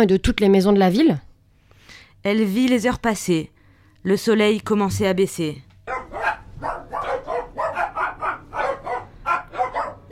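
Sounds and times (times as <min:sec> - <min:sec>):
speech: 0:00.0 - 0:01.3, 0:02.2 - 0:05.7
dogs barking at dusk: 0:05.8 - 0:10.1.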